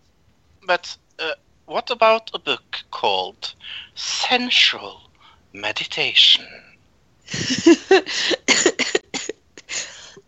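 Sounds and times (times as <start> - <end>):
speech: 0.7 - 6.7, 7.3 - 8.4
loud fit of coughing: 7.4 - 9.9.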